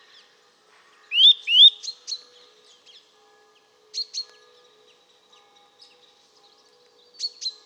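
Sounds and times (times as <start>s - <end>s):
Eurasian nuthatch Sitta europaea whistling and calling: 1.1s - 1.8s.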